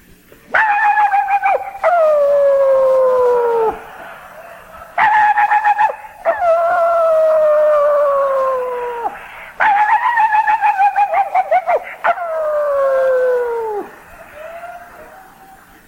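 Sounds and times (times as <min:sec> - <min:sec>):
dogs baying and howling at the moon: 0:00.5 - 0:15.8
laughter: 0:00.6 - 0:15.8.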